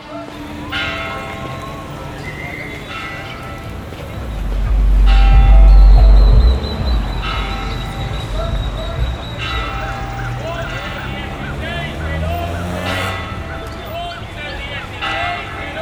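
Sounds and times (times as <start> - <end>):
busy outdoor background: 0.0 - 15.8
three cathedral bells ringing on the main plaza on a hot day: 0.0 - 15.8
heavy low rumble: 1.7 - 12.6.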